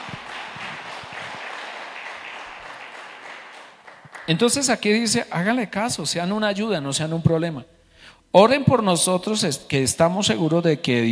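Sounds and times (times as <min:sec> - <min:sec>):
crowd applauding: 0:00.0 - 0:04.7
speech: 0:04.3 - 0:11.0.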